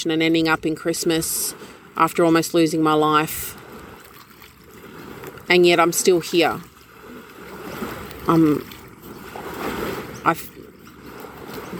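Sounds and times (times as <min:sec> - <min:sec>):
person's voice: 0:00.0 - 0:03.5, 0:05.5 - 0:06.6, 0:08.3 - 0:08.7
speech: 0:00.0 - 0:03.6, 0:05.5 - 0:06.7, 0:08.2 - 0:08.7, 0:10.2 - 0:10.5
river water flowing: 0:00.0 - 0:11.7.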